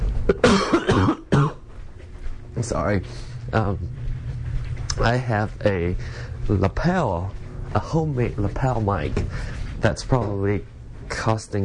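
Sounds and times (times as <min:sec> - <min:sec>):
speech: 0:00.3 - 0:01.2, 0:02.6 - 0:04.0, 0:05.0 - 0:11.6
person coughing: 0:00.3 - 0:01.6.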